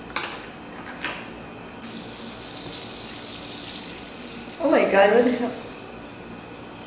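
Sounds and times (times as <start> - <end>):
fizzy marble soda fizzing in bottle: 1.8 - 6.7
speech: 4.6 - 5.7.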